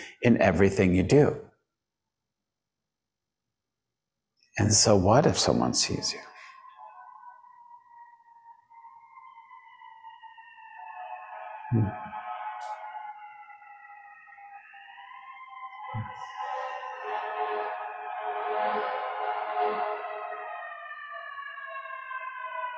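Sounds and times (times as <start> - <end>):
speech: 0.2 - 1.5, 4.6 - 6.3
emergency vehicle sirens wailing: 4.6 - 22.7.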